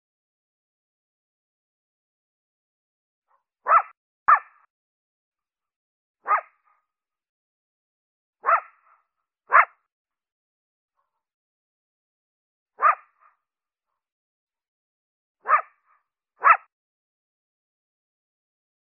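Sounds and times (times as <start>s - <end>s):
coyote giving short sharp barks: 3.6s - 4.7s, 6.2s - 6.6s, 8.4s - 9.8s, 12.8s - 13.2s, 15.4s - 15.8s, 16.4s - 16.7s.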